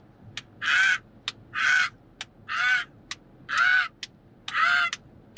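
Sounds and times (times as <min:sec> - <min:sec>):
person imitating crow caws: 0:00.6 - 0:01.9, 0:02.5 - 0:02.9, 0:03.5 - 0:04.0, 0:04.5 - 0:05.0.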